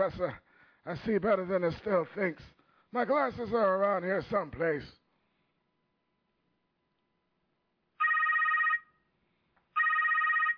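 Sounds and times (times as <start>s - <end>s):
speech: 0.0s - 5.0s
telephone ringing with electronic trill: 8.0s - 9.0s, 9.7s - 10.5s.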